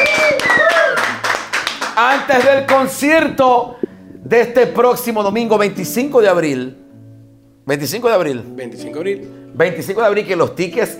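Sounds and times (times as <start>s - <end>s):
whoops and whistling: 0.0s - 1.2s
small group clapping in a studio: 0.0s - 3.0s
speech: 2.1s - 6.8s, 7.7s - 10.9s.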